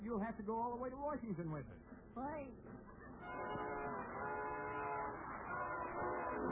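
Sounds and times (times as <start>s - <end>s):
speech: 0.0s - 4.5s
low sustained train horn blast: 3.2s - 6.4s.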